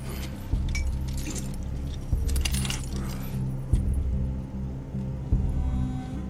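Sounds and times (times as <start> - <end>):
metal keys jangling while unlocking chains: 0.0 - 3.9
low rumbling background: 0.0 - 6.2.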